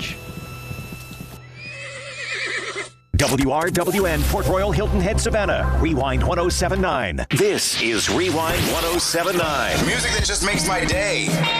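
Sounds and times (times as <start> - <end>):
hoofbeats: 0.0 - 3.0
horse neighing: 1.5 - 3.0
speech: 3.2 - 11.5.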